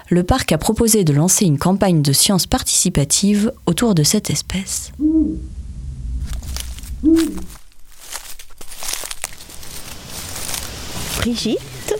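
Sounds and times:
speech: 0.1 - 5.6, 7.0 - 7.5, 11.2 - 11.7
low rumbling: 2.9 - 11.9
Eurasian eagle-owl hooting in the Bauges: 4.9 - 5.6, 7.0 - 7.6
rustling and crinkling noises: 6.0 - 11.9.

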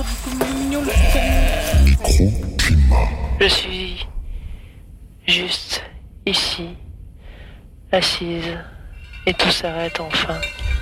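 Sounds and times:
steady outdoor hum: 0.0 - 10.8
goats bleating: 0.5 - 2.1
speech: 3.4 - 4.1, 5.3 - 6.8, 7.9 - 10.8.

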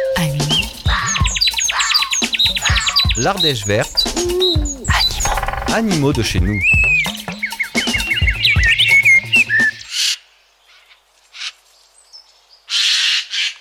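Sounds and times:
chirps and whistles: 0.0 - 9.9
Eurasian jay giving harsh rasping screeches: 0.8 - 7.3
low droning tones: 2.5 - 6.5
speech: 3.2 - 4.8, 5.7 - 6.9.

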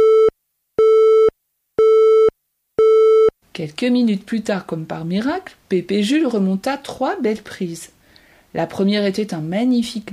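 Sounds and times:
telephone busy tone after a call cuts off: 0.0 - 3.3
speech: 3.6 - 10.1.

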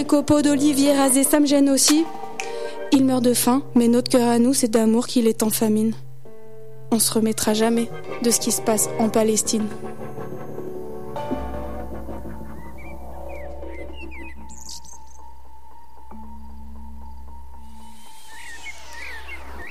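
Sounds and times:
speech: 0.0 - 2.2, 2.9 - 6.0, 6.9 - 10.0
common blackbird singing in whistled and chirping phrases: 12.4 - 15.4, 18.3 - 19.7.

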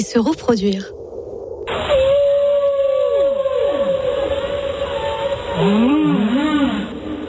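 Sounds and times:
speech: 0.0 - 1.0, 5.6 - 6.2
humpback whale song: 1.7 - 7.2.

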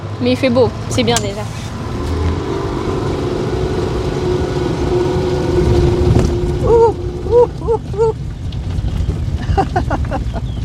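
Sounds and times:
speech: 0.2 - 1.6
wind buffeting the microphone during a bike ride: 0.3 - 10.6.

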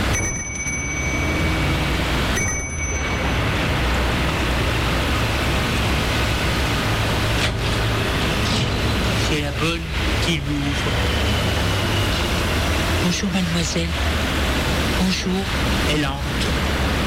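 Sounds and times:
house doorbell ringing: 0.0 - 4.0
constant loud hiss: 0.0 - 17.0
speech: 13.2 - 14.2, 15.1 - 16.8.

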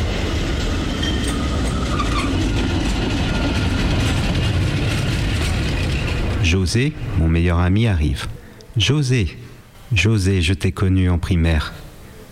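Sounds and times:
tram rumbling along its rails at a stop: 0.0 - 8.3
brief higher squeal of tram: 0.9 - 2.6
speech: 6.5 - 11.8.

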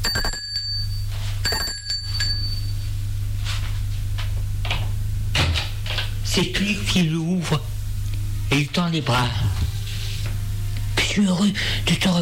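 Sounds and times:
doorbell ringing at an upstairs door: 0.0 - 2.9
steady low hum: 0.0 - 12.1
speech: 6.4 - 7.7, 8.5 - 9.7, 11.2 - 12.1.

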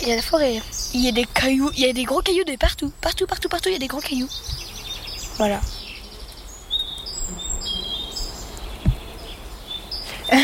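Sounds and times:
speech: 0.0 - 4.7, 5.4 - 5.8
several birds chirping and singing in a forest: 0.0 - 10.4
steady hiss of outdoor ambience: 0.0 - 10.4
soft thump: 8.8 - 9.1.

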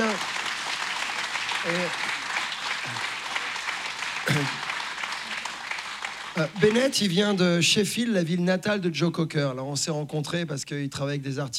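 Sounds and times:
people cheering over the ovation: 0.0 - 7.4
audience applauding with dense clapping: 0.0 - 7.5
speech: 1.6 - 2.1, 6.4 - 11.5.

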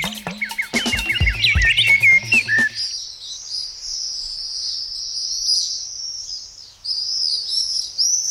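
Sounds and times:
common swifts calling over Auvergne-Rhône-Alpes: 0.0 - 3.0.

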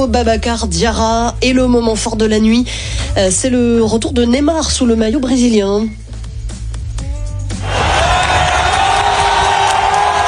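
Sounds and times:
speech: 0.0 - 6.0
stadium crowd in Miami cheering a footballer returning to the national team: 7.6 - 10.2.

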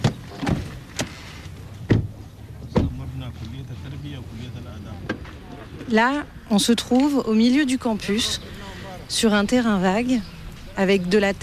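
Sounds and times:
car doors and handles clunking and clicking: 0.0 - 3.0
speech: 3.4 - 11.4.

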